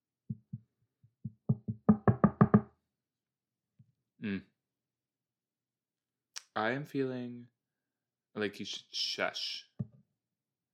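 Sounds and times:
knuckles rapping on a wooden table: 0.3s - 2.7s
speech: 4.2s - 4.5s, 6.6s - 7.6s, 8.4s - 9.7s.

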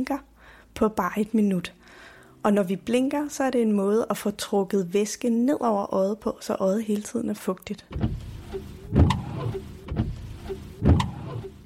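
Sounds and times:
speech: 0.0s - 8.3s
car windshield wipers moving back and forth: 7.9s - 11.6s
rubbery swish of car windshield wipers: 7.9s - 11.6s.

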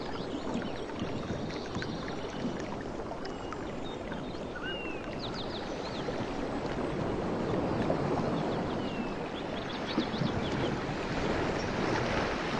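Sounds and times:
ocean waves on a beach: 0.0s - 12.5s
soft water splashes: 0.0s - 12.5s
faint bird chirps: 4.4s - 5.4s.

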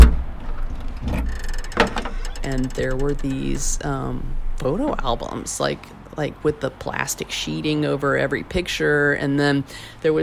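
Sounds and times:
car trunk opening: 0.0s - 3.2s
sharp latch clunk: 0.0s - 3.2s
low idling rumble: 0.0s - 9.5s
speech: 2.5s - 10.2s.

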